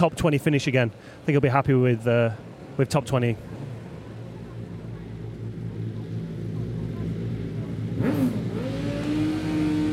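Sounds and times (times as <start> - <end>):
speech: 0.0 - 3.6
racing motorcycle engine setting off at a TT road race: 5.2 - 9.9.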